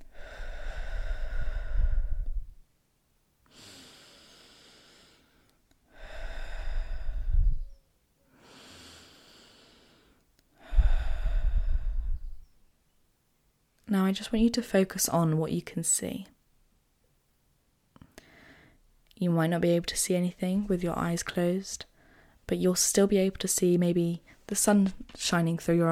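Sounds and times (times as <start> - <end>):
slow deep breaths in through the nose and out through the mouth: 0.0 - 2.6, 3.5 - 12.5, 18.0 - 18.8, 21.9 - 22.4
speech: 13.9 - 16.4, 19.3 - 21.9, 22.5 - 25.9.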